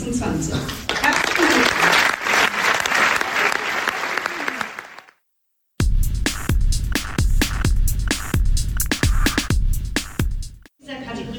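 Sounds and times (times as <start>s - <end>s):
speech: 0.1s - 0.9s
large audience clapping: 0.8s - 5.2s
punchy rhythmic percussive music: 5.8s - 10.7s.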